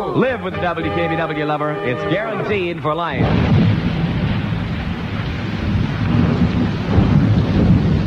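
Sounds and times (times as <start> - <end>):
speech: 0.1 - 3.5
thunder rumbling through a storm: 3.1 - 8.0
steady rain: 3.2 - 8.0.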